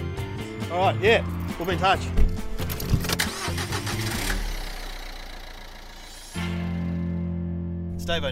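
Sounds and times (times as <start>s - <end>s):
private car engine idling in Sydney: 0.2s - 7.2s
speech: 0.7s - 2.2s, 8.1s - 8.2s
private car engine starting in Sydney: 1.2s - 7.6s.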